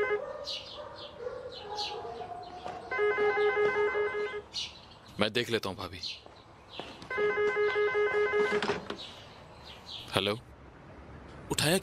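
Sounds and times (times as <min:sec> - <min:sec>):
speech: 0:00.4 - 0:00.7, 0:03.3 - 0:09.2, 0:10.1 - 0:10.5, 0:11.5 - 0:11.8
telephone ringing unanswered: 0:02.9 - 0:04.4, 0:07.1 - 0:08.8.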